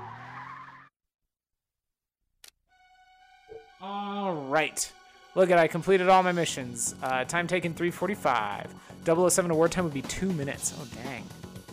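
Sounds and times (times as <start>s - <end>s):
car speeding off with tires squealing: 0.0s - 0.9s
speech: 3.8s - 11.4s.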